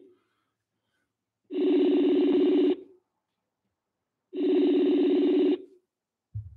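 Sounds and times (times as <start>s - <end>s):
telephone ringback tones as a call is placed: 1.5s - 2.9s, 4.4s - 5.6s.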